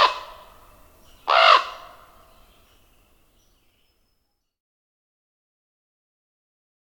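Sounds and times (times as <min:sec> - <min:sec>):
common raven croaking: 0:00.0 - 0:02.4.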